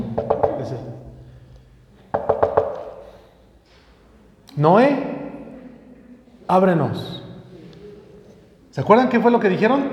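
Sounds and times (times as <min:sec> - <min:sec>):
quick insistent knocking on a hard surface imitating door knocking: 0:00.0 - 0:00.8, 0:02.1 - 0:03.1
speech: 0:04.6 - 0:05.1, 0:06.5 - 0:07.2, 0:08.8 - 0:09.9.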